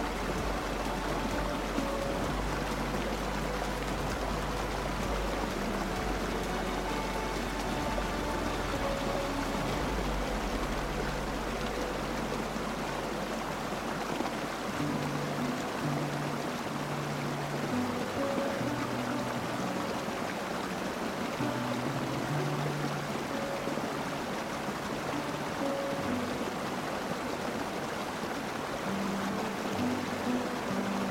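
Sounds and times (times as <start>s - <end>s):
deep hum: 0.0s - 14.1s
soft music with slow sustained low notes: 0.0s - 31.0s
waterfall rushing: 0.0s - 31.0s.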